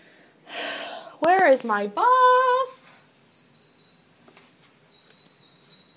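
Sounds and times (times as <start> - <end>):
speech: 1.2 - 2.1
birdsong drifting in from outside: 2.2 - 5.9.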